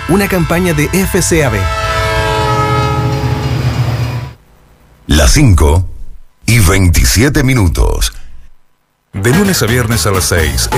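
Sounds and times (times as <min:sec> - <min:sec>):
train horn blaring: 0:00.0 - 0:04.4
speech: 0:00.1 - 0:02.0, 0:05.1 - 0:05.9, 0:06.5 - 0:08.2, 0:09.2 - 0:10.7.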